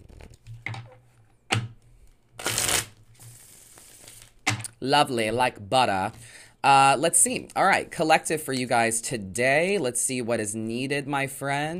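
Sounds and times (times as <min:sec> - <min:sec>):
deck of tarot cards being shuffled: 0:00.0 - 0:00.9, 0:02.0 - 0:04.7
speech: 0:04.8 - 0:11.7.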